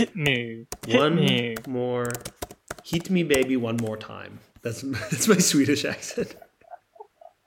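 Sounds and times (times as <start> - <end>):
one-handed typing on a computer keyboard: 0.0 - 4.1
speech: 0.0 - 6.4.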